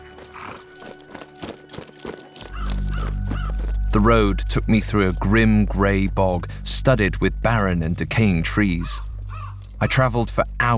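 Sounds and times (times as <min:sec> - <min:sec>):
horse hooves clip-clopping at a walking pace: 0:00.0 - 0:10.7
speech: 0:03.9 - 0:09.1, 0:09.8 - 0:10.7
loud low rumble: 0:03.9 - 0:10.7.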